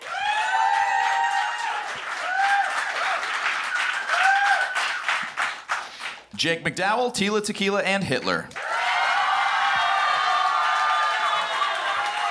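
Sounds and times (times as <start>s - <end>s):
people whooping and cheering: 0.0s - 5.4s, 8.6s - 12.2s
crowd applause: 0.0s - 6.3s, 8.5s - 12.2s
speech: 6.4s - 8.6s.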